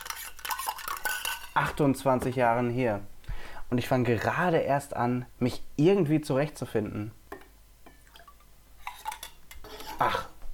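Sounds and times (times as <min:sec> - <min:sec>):
spoon stirring a drink in a glass: 0:00.0 - 0:02.4, 0:07.9 - 0:10.2
speech: 0:01.6 - 0:03.1, 0:03.7 - 0:07.2.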